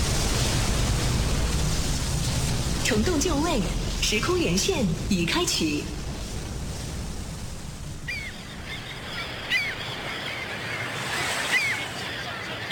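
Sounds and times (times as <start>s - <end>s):
sea waves at a naval harbour: 0.0s - 12.7s
speech: 2.9s - 6.0s
bird cries: 8.1s - 12.7s.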